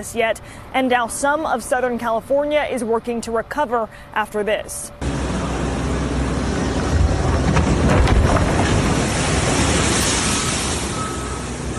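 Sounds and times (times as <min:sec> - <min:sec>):
speech: 0:00.0 - 0:05.1
heavy surf crashing against a hard shoreline: 0:05.0 - 0:11.7
wind rumbling: 0:05.0 - 0:11.7.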